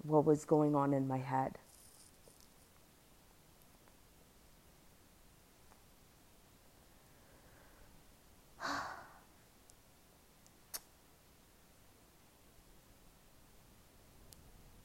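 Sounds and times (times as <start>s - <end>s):
speech: 0.1s - 1.6s
slow airy breath out: 7.0s - 8.0s, 8.6s - 9.3s
tiny ticks: 10.4s - 10.9s.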